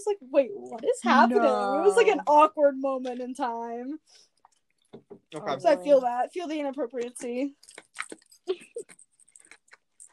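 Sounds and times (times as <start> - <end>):
speech: 0.0 - 4.3, 4.9 - 9.0
ice being chewed: 7.6 - 10.1.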